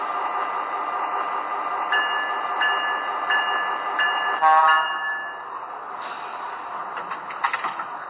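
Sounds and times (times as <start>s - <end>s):
passenger train arriving at station with mechanical roar: 0.0s - 8.0s
passenger train horn blasts: 4.4s - 4.9s.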